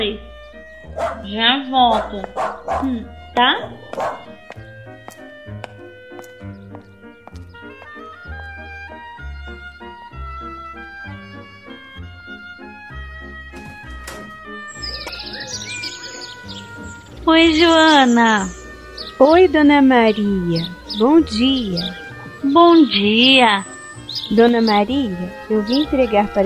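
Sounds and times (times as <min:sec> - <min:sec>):
busy tonal background: 0:00.0 - 0:26.4
bird-like chirping: 0:00.4 - 0:01.3, 0:01.9 - 0:03.1, 0:14.7 - 0:26.4
dog barking: 0:00.9 - 0:01.3, 0:01.9 - 0:03.0, 0:03.9 - 0:04.4
speech: 0:00.9 - 0:04.2, 0:17.3 - 0:18.6, 0:19.2 - 0:26.4.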